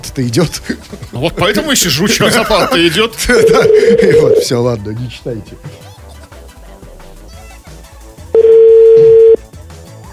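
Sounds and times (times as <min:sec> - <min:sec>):
speech: 0:00.0 - 0:05.9
laughter: 0:00.2 - 0:04.5, 0:05.6 - 0:08.2
telephone ringback tone: 0:03.4 - 0:04.5, 0:08.4 - 0:09.4.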